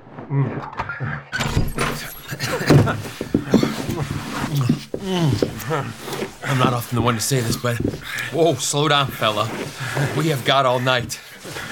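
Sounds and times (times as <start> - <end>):
speech: 0.3 - 1.3, 4.6 - 11.2
door opening with clatter: 1.4 - 4.8
laughter: 1.8 - 11.7.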